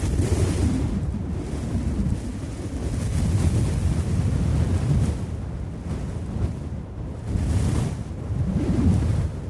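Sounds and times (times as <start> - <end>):
howling hurricane-force wind: 0.0 - 9.4.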